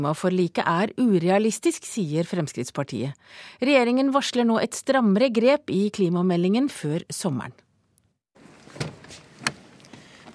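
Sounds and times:
speech: 0:00.0 - 0:07.6
steady rustling: 0:08.4 - 0:10.3
car door clunk of an Audi A3: 0:08.5 - 0:10.3.

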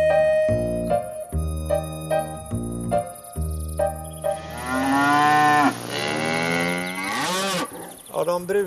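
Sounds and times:
faint insects chirping: 0:00.1 - 0:08.6
Highland cattle mooing: 0:04.4 - 0:08.0.

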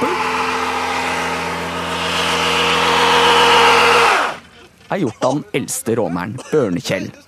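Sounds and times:
car engine revving during a burnout: 0:00.0 - 0:04.6
tires hissing during a burnout: 0:00.0 - 0:04.9
speech: 0:05.0 - 0:07.2.

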